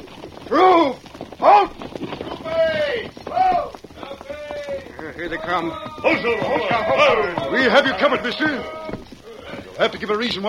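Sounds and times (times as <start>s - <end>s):
horse hooves clip-clopping on a trail: 0.0s - 10.4s
men shouting commands: 2.4s - 10.4s
speech: 5.5s - 8.8s, 9.8s - 10.4s.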